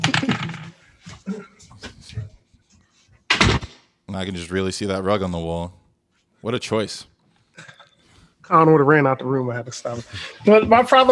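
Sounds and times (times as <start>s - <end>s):
sharp thud of a door closing: 3.3s - 3.8s
speech: 4.2s - 5.8s, 6.4s - 7.8s, 8.5s - 11.1s.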